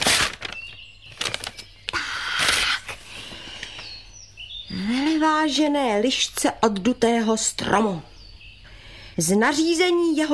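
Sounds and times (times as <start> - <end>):
envelope paper rustling as it is pulled out and opened: 0.0 - 3.2
speech: 5.4 - 8.1, 9.2 - 10.3.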